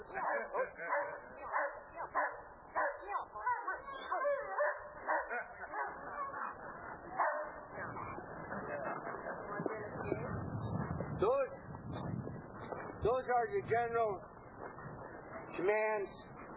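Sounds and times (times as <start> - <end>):
dog barking and yelping while catching a running man in protective clothing: 0.0 - 6.6, 7.2 - 8.1
people's voices: 0.0 - 16.5
speech: 0.1 - 2.4, 13.0 - 14.3, 15.6 - 16.3.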